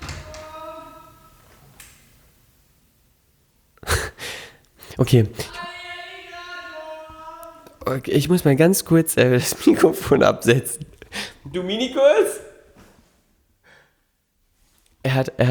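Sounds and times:
door opening with clunking thumps: 0.0s - 1.9s
speech: 5.0s - 5.5s, 7.9s - 10.9s, 11.5s - 12.4s, 15.2s - 15.4s.

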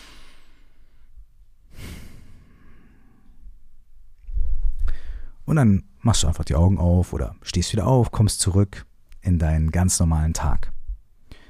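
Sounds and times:
deep slow breathing: 0.0s - 3.6s, 4.3s - 5.4s, 11.3s - 11.4s
speech: 5.5s - 10.8s.

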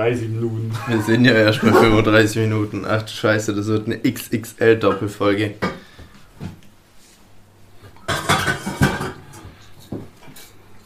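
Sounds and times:
speech: 0.0s - 5.8s
laughter: 0.6s - 2.3s
pots and cutlery clattering: 8.0s - 9.6s.

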